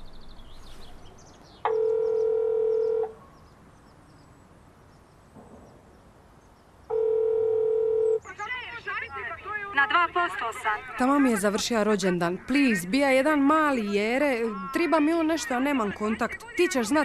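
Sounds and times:
phone call ringback tones: 0:01.7 - 0:03.1, 0:06.9 - 0:08.2
speech: 0:10.2 - 0:17.0.

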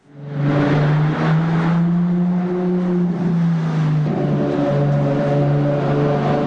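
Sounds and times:
Ferrari sports car engine roaring: 0:00.0 - 0:06.4.

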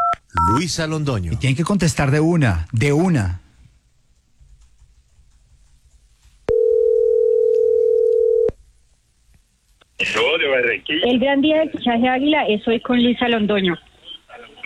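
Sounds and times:
speech: 0:00.5 - 0:03.4, 0:10.6 - 0:13.9
steady telephone line tone on a call: 0:06.5 - 0:08.5.

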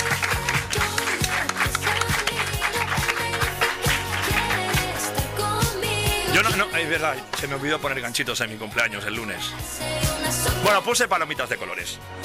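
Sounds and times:
crowd applauding: 0:00.0 - 0:05.5
rhythmic musical backing with a pulsing bass line: 0:00.0 - 0:12.2
speech: 0:06.6 - 0:12.2.

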